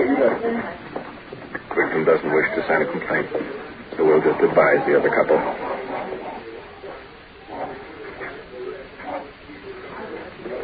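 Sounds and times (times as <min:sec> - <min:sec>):
speech: 0:00.2 - 0:01.1, 0:01.9 - 0:05.7
Great Dane dogs giving deep barks: 0:04.9 - 0:08.4.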